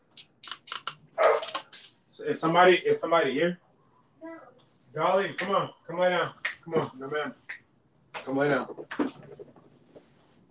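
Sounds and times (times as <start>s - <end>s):
dogs barking: 1.2s - 1.6s
speech: 2.2s - 3.6s, 4.9s - 7.4s, 8.2s - 9.1s.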